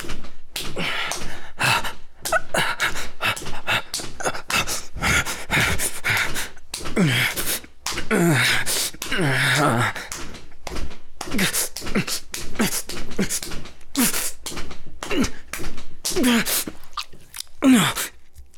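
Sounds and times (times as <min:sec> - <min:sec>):
person gasping and panting: 0:00.6 - 0:18.2
person moaning: 0:00.8 - 0:06.3, 0:06.9 - 0:10.2, 0:11.3 - 0:14.4, 0:15.0 - 0:15.5, 0:16.2 - 0:16.8, 0:17.6 - 0:18.2.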